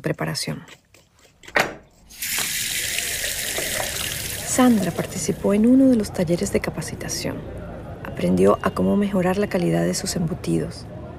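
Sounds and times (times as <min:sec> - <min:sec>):
speech: 0:00.0 - 0:00.8, 0:04.6 - 0:07.6, 0:08.2 - 0:11.0
tap water running while rinsing a fish: 0:02.1 - 0:05.6.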